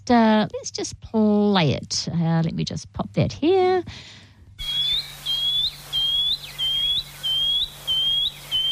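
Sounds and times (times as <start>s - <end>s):
speech: 0.1s - 4.2s
shining cuckoo singing: 4.6s - 8.7s.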